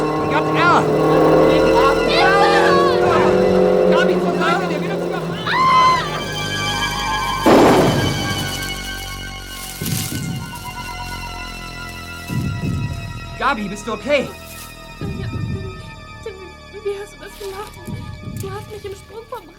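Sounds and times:
car engine roaring while speeding toward people on bicycles: 0:00.0 - 0:15.0
speech: 0:00.4 - 0:01.2, 0:13.5 - 0:14.4.

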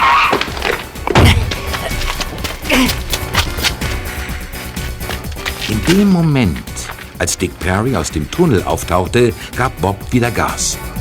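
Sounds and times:
car tires squealing while turning sharply and braking hard: 0:00.0 - 0:01.0
sharp knocks and thumps: 0:00.0 - 0:07.2
speech: 0:05.9 - 0:10.9.

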